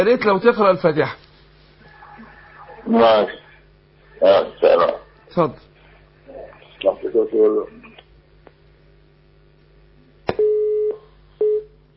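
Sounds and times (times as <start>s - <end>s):
speech: 0.0s - 1.2s, 2.8s - 3.4s, 4.2s - 5.7s, 6.4s - 7.8s
telephone busy tone after a disconnected call: 10.4s - 11.7s.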